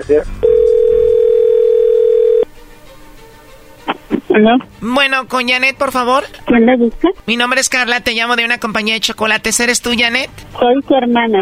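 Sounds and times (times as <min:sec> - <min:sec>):
speech: 0:00.0 - 0:00.5, 0:04.3 - 0:11.3
telephone dial tone when placing a call: 0:00.4 - 0:02.5.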